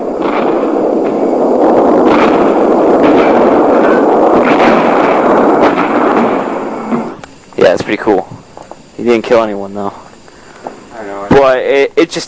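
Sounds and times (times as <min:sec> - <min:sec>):
mortar strike explosions in a video game: 0:00.0 - 0:09.6
sharp cracks: 0:00.0 - 0:11.6
sustained rumble: 0:00.0 - 0:12.2
speech: 0:07.7 - 0:08.3, 0:09.0 - 0:09.9, 0:11.4 - 0:12.2.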